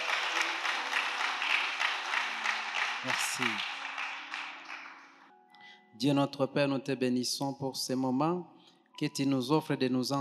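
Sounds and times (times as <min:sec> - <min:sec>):
church congregation applauding: 0:00.0 - 0:05.3
speech: 0:03.0 - 0:03.7, 0:06.0 - 0:10.1.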